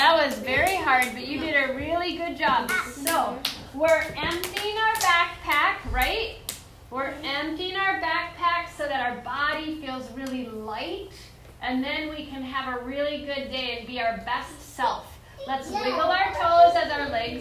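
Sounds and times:
speech: 0:00.3 - 0:17.3
children clapping hands: 0:02.7 - 0:05.6
young voices talking: 0:15.4 - 0:17.3.

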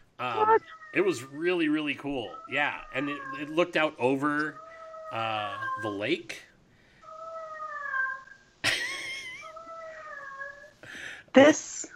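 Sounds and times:
cat howling in long wavering meows: 0:00.2 - 0:06.1, 0:07.0 - 0:08.4, 0:09.4 - 0:10.8
speech: 0:00.2 - 0:06.5, 0:11.3 - 0:11.9.

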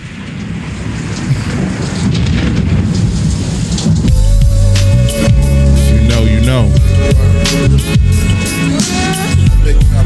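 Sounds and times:
low rumble: 0:00.0 - 0:08.5
steady dense rain hissing: 0:00.0 - 0:10.0
bass-heavy musical tone: 0:04.1 - 0:10.0.

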